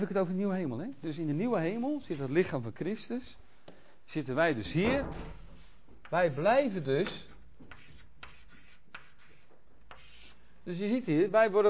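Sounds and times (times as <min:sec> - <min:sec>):
speech: 0:00.0 - 0:03.5, 0:04.1 - 0:05.4, 0:06.1 - 0:07.3, 0:10.6 - 0:11.6
pen or marker scratching out a diagram: 0:07.7 - 0:10.4.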